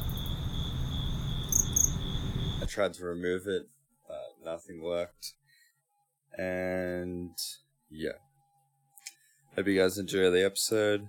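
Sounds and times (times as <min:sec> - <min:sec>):
crickets chirping: 0:00.0 - 0:02.7
speech: 0:02.7 - 0:03.8, 0:04.4 - 0:05.4, 0:06.3 - 0:08.3, 0:09.6 - 0:11.0.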